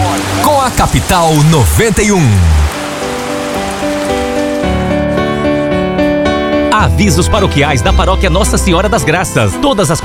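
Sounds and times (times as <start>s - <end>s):
rain sound effect in a radio broadcast: 0.0s - 7.2s
speech: 0.7s - 2.8s, 6.8s - 10.0s
sustained musical tones: 2.6s - 9.7s.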